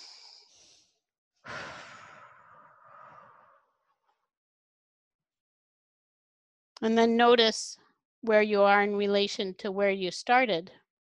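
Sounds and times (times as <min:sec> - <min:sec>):
person taking deep breaths during a guided anchoring exercise: 0:00.0 - 0:03.8
speech: 0:06.8 - 0:10.8.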